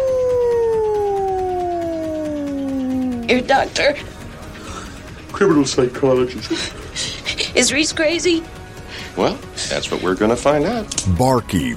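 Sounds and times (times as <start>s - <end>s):
wolf howling: 0.0s - 3.6s
speech: 3.3s - 4.1s, 5.4s - 11.7s.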